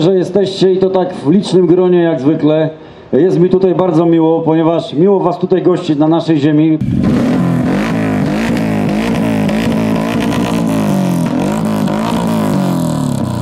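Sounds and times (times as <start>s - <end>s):
speech: 0.0s - 7.4s
motorcycle engines revving at a rally in the Sieradz area of Poland in fine weather: 6.8s - 13.3s.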